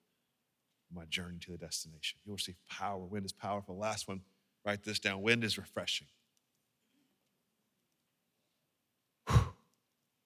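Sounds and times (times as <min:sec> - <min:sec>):
speech: 0:00.9 - 0:06.2
preacher taking a deep breath mid-sermon: 0:09.3 - 0:09.6.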